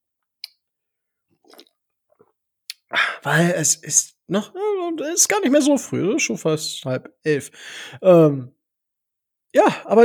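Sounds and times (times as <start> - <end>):
sipping coffee: 1.4 - 1.7
gulp: 1.4 - 1.8
wet slurp: 1.4 - 1.8
speech: 3.2 - 8.6, 9.5 - 10.0.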